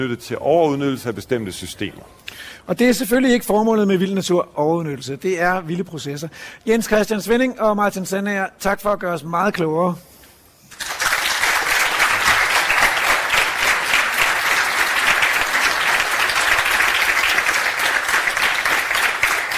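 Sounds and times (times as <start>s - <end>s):
speech: 0.0s - 10.1s
sizable audience applauding at live stage broadcast: 10.7s - 19.5s.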